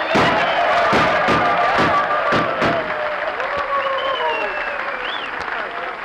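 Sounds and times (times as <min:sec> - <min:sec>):
crowd whistles: 0:00.0 - 0:02.0, 0:03.6 - 0:05.5
sharp booming gunshots: 0:00.0 - 0:03.1
crowd shouting: 0:00.0 - 0:05.1
crowd applauding: 0:00.0 - 0:06.0.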